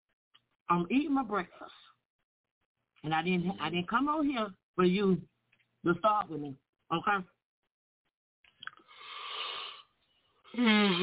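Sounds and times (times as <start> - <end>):
speech: 0.7 - 1.9, 3.0 - 7.4, 10.6 - 11.0
person yawning: 10.6 - 11.0.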